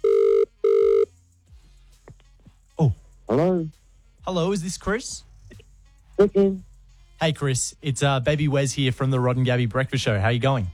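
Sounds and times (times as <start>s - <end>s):
telephone ringing tone on an outgoing call: 0.0s - 1.1s
speech: 2.8s - 5.3s, 6.2s - 10.7s.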